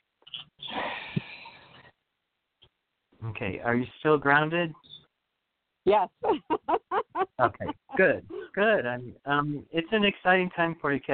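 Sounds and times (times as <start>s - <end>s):
guided breath in through the nose and out through the mouth: 0.6s - 2.0s
speech: 3.3s - 4.9s, 5.8s - 11.1s
laughter: 6.2s - 8.8s.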